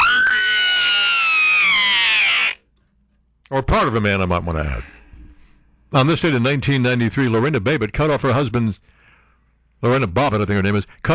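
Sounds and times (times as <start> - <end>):
man screaming high-pitched and strained: 0.0 - 2.6
speech: 3.5 - 5.0, 5.9 - 9.0, 9.8 - 11.1.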